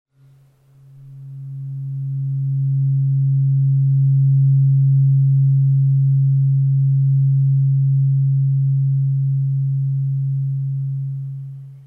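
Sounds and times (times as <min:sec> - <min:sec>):
om tone at 136.1 Hz therapeutic tuning fork: 0:00.2 - 0:11.8.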